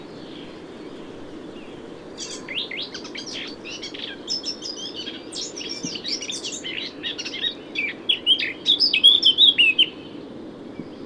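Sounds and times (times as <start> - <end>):
Eurasian blackcap Sylvia atricapilla singing: 2.2 - 10.0.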